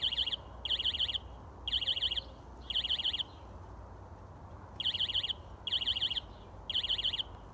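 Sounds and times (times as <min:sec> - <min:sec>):
alarm: 0:00.0 - 0:03.2, 0:04.8 - 0:07.3.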